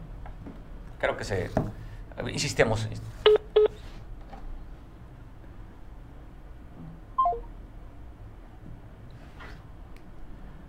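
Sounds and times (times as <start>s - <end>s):
speech: 1.0s - 3.2s
telephone keypad tones redialing a cut-off call: 7.2s - 7.4s
brief falling electronic tone: 7.2s - 7.5s.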